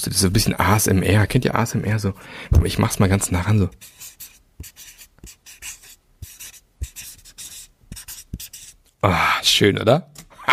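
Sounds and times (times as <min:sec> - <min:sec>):
speech: 0:00.0 - 0:04.3, 0:09.0 - 0:10.1
marker pen writing on a sticky note: 0:03.7 - 0:08.8.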